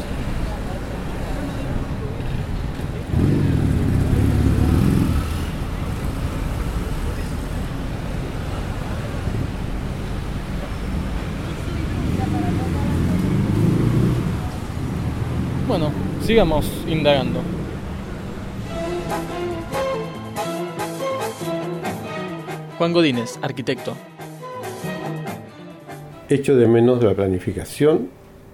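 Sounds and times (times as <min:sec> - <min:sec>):
shrill city buses rumbling by in Buenos Aires: 0:00.0 - 0:23.2, 0:24.6 - 0:28.5
speech: 0:16.3 - 0:17.5, 0:22.8 - 0:24.1, 0:26.3 - 0:28.2.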